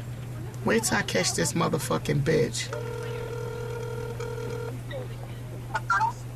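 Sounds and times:
speech: 0:00.6 - 0:03.4
electronic phone line ring tone: 0:02.7 - 0:04.8.

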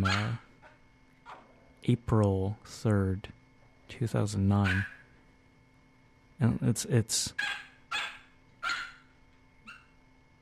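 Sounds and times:
dog barking: 0:00.0 - 0:01.5, 0:04.6 - 0:05.0, 0:07.4 - 0:09.1, 0:09.7 - 0:09.9
dog yipping: 0:00.0 - 0:01.5, 0:07.4 - 0:09.1, 0:09.7 - 0:10.0
speech: 0:01.8 - 0:05.0, 0:06.4 - 0:07.6.

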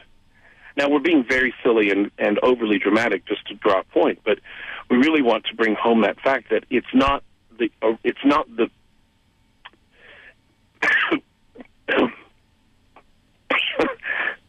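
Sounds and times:
speech: 0:00.8 - 0:08.8, 0:10.8 - 0:11.3, 0:11.9 - 0:12.2
person clearing throat: 0:10.8 - 0:12.3, 0:13.5 - 0:14.4
person coughing: 0:10.8 - 0:12.3, 0:13.5 - 0:14.4.

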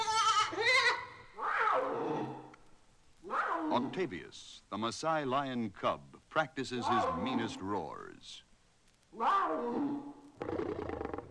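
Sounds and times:
baby domestic goats bleating: 0:00.0 - 0:01.6
speech: 0:03.8 - 0:08.5, 0:09.1 - 0:11.0.

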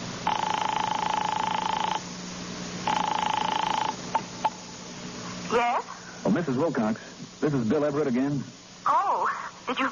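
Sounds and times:
telephone ringing over the line: 0:00.2 - 0:02.0, 0:02.9 - 0:04.6
steady tone on a phone line: 0:00.2 - 0:02.1, 0:02.8 - 0:04.6
speech: 0:06.5 - 0:09.0, 0:09.7 - 0:09.8.

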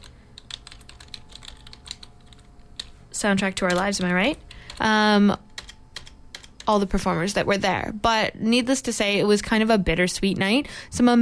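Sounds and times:
typing on a computer keyboard: 0:00.0 - 0:03.0, 0:03.6 - 0:04.9, 0:05.5 - 0:06.8
low steady hum: 0:00.0 - 0:11.2
speech: 0:03.2 - 0:05.5, 0:06.7 - 0:11.2.

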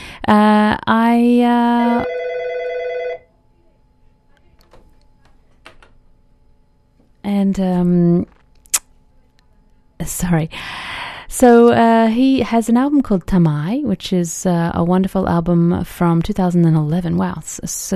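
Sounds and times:
speech: 0:00.3 - 0:02.2, 0:07.3 - 0:08.4, 0:10.0 - 0:17.9
telephone ringing with an electronic ringtone: 0:01.8 - 0:03.3.

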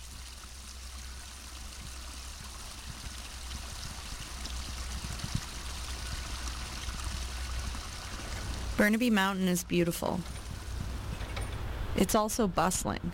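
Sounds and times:
forest stream flowing with splashes and gurgles: 0:00.0 - 0:12.4
speech: 0:08.8 - 0:10.4, 0:12.0 - 0:13.1.

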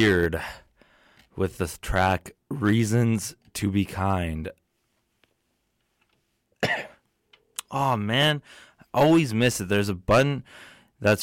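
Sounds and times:
speech: 0:00.0 - 0:00.6, 0:01.4 - 0:04.6, 0:06.6 - 0:06.9, 0:07.7 - 0:11.2
single short cough: 0:06.6 - 0:07.1.

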